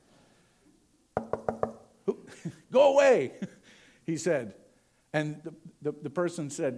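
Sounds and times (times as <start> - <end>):
firm knocking on a wooden door: 1.2 - 1.8
speech: 2.4 - 3.5, 4.1 - 6.7.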